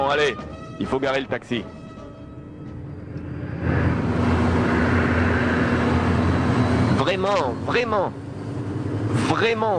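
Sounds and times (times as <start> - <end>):
speech: 0.1 - 1.8, 7.1 - 8.2, 9.1 - 9.7
faint high whine of a taxiing jet airplane: 2.2 - 8.9
rented jet airplane engine roaring while taxiing after landing: 2.6 - 9.7.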